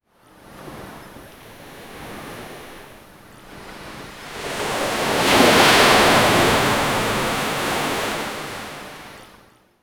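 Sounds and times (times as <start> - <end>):
ocean waves crashing: 3.5 - 9.3.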